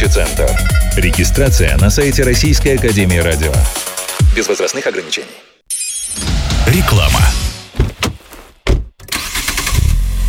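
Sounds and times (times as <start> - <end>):
speech: 0.0 - 5.5, 6.7 - 7.4
Geely Monjaro 238 horsepower all-wheel drive car engine starting and revving: 9.1 - 10.2.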